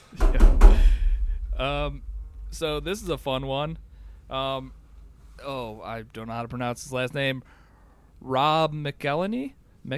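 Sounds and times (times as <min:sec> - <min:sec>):
knuckles knocking on wood: 0:00.2 - 0:01.1
speech: 0:01.6 - 0:04.8, 0:05.4 - 0:07.6, 0:08.2 - 0:09.9.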